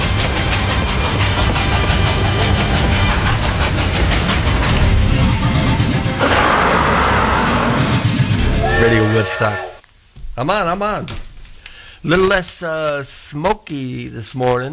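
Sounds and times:
excursion train wheels clacking on rail joints: 0:00.0 - 0:08.9
hissing brighter roar of a train: 0:00.0 - 0:09.8
speech: 0:08.9 - 0:09.7, 0:10.4 - 0:11.2, 0:12.0 - 0:14.7.

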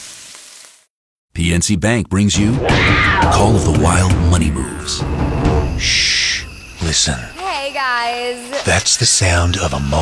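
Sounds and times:
Spam pork frying and sizzling in a pan: 0:00.0 - 0:00.9
speech: 0:01.4 - 0:10.0.

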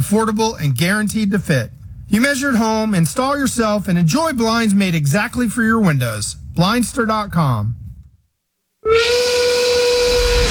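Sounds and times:
speech: 0:00.0 - 0:07.8, 0:08.8 - 0:09.5
steam whistle blowing: 0:08.8 - 0:10.4.

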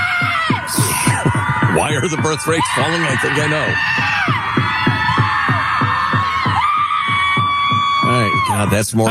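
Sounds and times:
steady low thumps: 0:00.0 - 0:08.8
group of people doing therapeutic screaming together: 0:00.0 - 0:09.0
speech: 0:01.8 - 0:04.7, 0:08.1 - 0:09.0.

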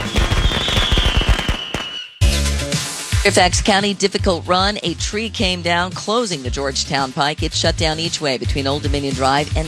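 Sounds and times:
rapid loud volley of crackling firework bursts: 0:00.0 - 0:02.2
steady whistling tone: 0:00.0 - 0:02.5
speech: 0:03.2 - 0:09.6.

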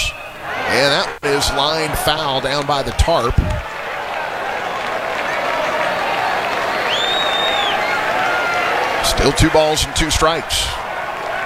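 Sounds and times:
sharp rising-and-falling whistle: 0:00.0 - 0:00.4, 0:04.7 - 0:08.7
large baseball crowd applauding and cheering: 0:00.0 - 0:11.4
speech: 0:00.8 - 0:03.6, 0:09.2 - 0:10.8.

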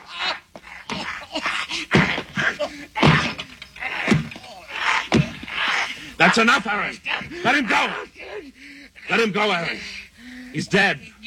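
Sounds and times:
scuffling during a fistfight: 0:00.0 - 0:06.2
grunts during a fistfight: 0:00.0 - 0:09.9
heavy punches to the face in a fistfight: 0:01.9 - 0:05.5
speech: 0:06.2 - 0:11.2.

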